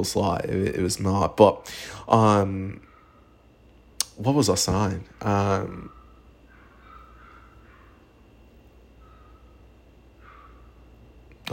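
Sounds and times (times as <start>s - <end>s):
speech: 0.0s - 2.9s, 4.2s - 6.0s
steady low hum: 0.0s - 11.5s
dog barking outside: 2.8s - 3.4s, 5.1s - 8.2s, 9.0s - 9.6s, 10.2s - 10.8s.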